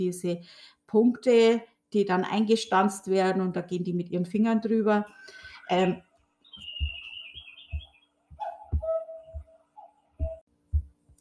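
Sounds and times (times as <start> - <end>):
speech: 0.0 - 6.1
soft regular mechanical thumps of cuckoo clock: 6.6 - 9.5, 10.2 - 11.1
cuckoo clock calling: 6.6 - 10.4.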